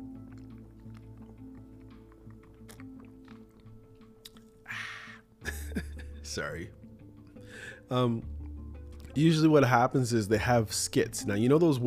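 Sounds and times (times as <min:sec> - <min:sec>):
person sipping a drink: 0:00.0 - 0:05.3
laughter: 0:05.4 - 0:06.2
speech: 0:06.4 - 0:06.8, 0:07.6 - 0:08.4, 0:09.2 - 0:11.8.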